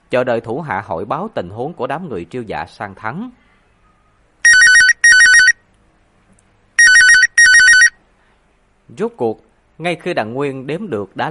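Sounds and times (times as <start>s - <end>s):
speech: 0.1s - 3.4s, 8.9s - 11.2s
telephone on a work desk ringing with a trilling electronic ringtone: 4.4s - 5.6s, 6.8s - 8.0s.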